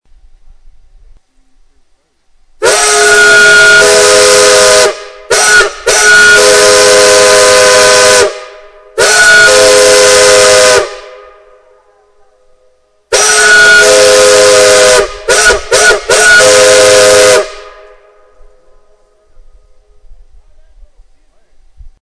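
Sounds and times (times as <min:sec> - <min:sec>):
steam whistles overblown: 0:02.6 - 0:11.7, 0:13.1 - 0:18.4.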